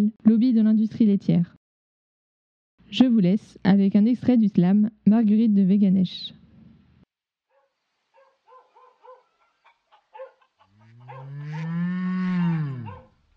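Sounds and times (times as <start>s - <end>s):
speech: 0.0s - 1.6s, 2.9s - 6.4s
faint chirping calls: 7.6s - 11.3s
cow mooing: 10.7s - 13.2s.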